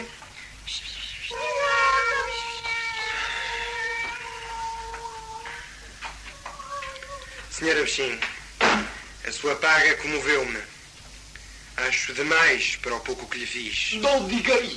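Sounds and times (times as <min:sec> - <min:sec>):
speech: 0:00.7 - 0:01.0, 0:07.6 - 0:08.3, 0:09.4 - 0:10.7, 0:11.8 - 0:14.7
several cats meowing: 0:01.2 - 0:07.6.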